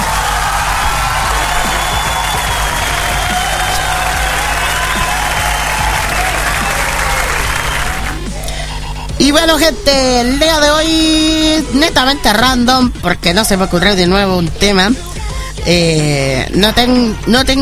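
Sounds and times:
crowd applause: 0.0s - 8.3s
speech: 9.4s - 17.6s.

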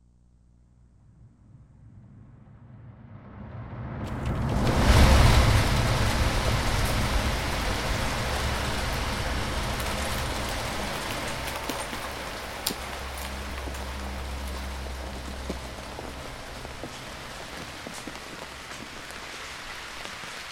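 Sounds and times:
low rumble: 0.0s - 20.2s
steady rain pattering on a hard surface: 4.1s - 20.5s
sharper drips: 4.5s - 20.5s.

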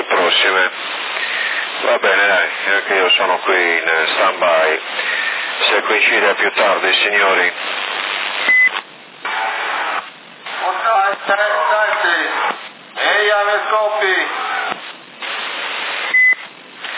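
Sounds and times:
narrow-band CB radio voices talking: 0.0s - 16.1s
speech: 2.0s - 7.7s, 11.2s - 12.5s
CB radio transmission beep: 8.4s - 9.4s, 16.0s - 16.5s.

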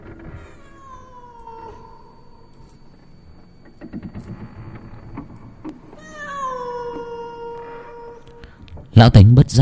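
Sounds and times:
cat meowing eerily on a porch at night: 0.4s - 2.7s, 5.9s - 8.6s
speech: 9.0s - 9.5s.

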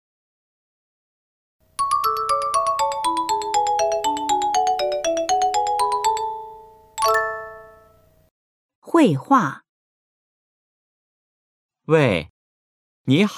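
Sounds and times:
melodic telephone ringtone for an incoming call: 1.8s - 8.0s
speech: 9.0s - 9.6s, 11.9s - 12.3s, 13.1s - 13.3s.

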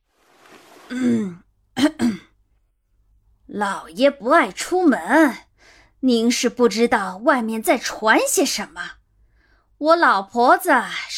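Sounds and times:
speech: 0.9s - 2.1s, 3.6s - 9.0s, 9.8s - 11.1s
man coughing lightly behind his hand: 0.9s - 2.3s.

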